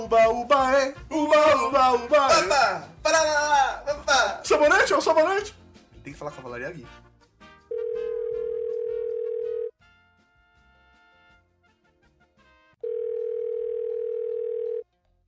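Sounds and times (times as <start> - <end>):
speech: 0.0 - 7.1
music: 0.0 - 12.9, 14.8 - 15.2
telephone ringback tone while waiting for an answer: 7.7 - 9.7, 12.8 - 14.8.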